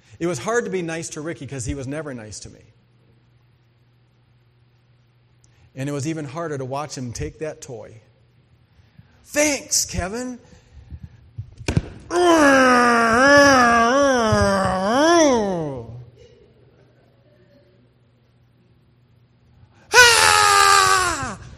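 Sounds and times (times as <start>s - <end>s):
speech: 0.2s - 2.8s, 5.8s - 8.1s, 9.2s - 10.6s
person wailing in frustration: 12.1s - 16.0s, 19.9s - 21.5s.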